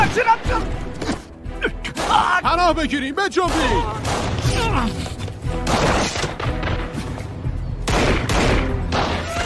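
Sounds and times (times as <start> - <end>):
speech: 0.1 - 1.1, 2.1 - 5.1
sniper gunfire from above: 5.6 - 7.0, 7.8 - 9.4.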